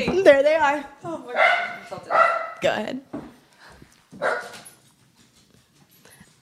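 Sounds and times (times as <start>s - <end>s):
speech: 0.0s - 3.2s, 4.2s - 4.6s
dog barking: 1.3s - 2.6s, 4.2s - 4.7s.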